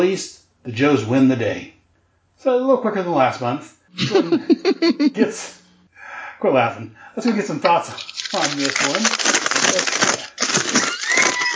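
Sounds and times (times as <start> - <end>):
speech: 0.0 - 1.8, 2.4 - 5.6, 6.4 - 10.8
laughter: 4.0 - 5.6
paper rustling and crinkling: 7.7 - 11.5.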